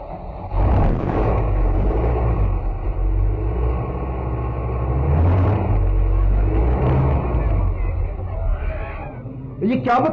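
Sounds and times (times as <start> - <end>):
car engine starting and driving off along a street: 0.0 - 10.1
voices murmuring: 5.9 - 10.1.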